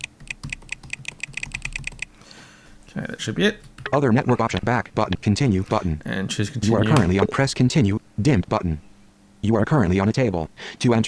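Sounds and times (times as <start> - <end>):
fast typing of a password on a computer keyboard: 0.0 - 2.1
speech: 2.9 - 11.0.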